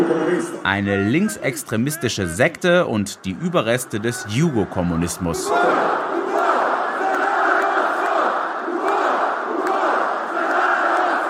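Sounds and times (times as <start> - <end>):
speech: 0.1 - 6.1
huge stadium crowd roaring a battle-cry chant in unison: 3.3 - 11.2.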